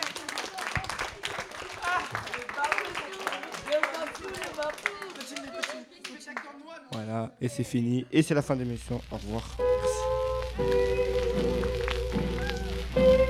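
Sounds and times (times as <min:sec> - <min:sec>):
excited voices and cheers: 0:00.0 - 0:06.7, 0:12.3 - 0:12.9
small crowd clapping: 0:00.0 - 0:07.1, 0:10.6 - 0:13.2
speech: 0:06.2 - 0:10.0, 0:10.6 - 0:11.0.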